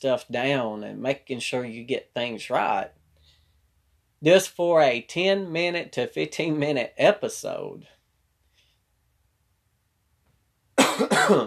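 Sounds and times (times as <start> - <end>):
speech: 0.0 - 3.0, 4.2 - 8.0, 11.0 - 11.4
person coughing: 10.8 - 11.4.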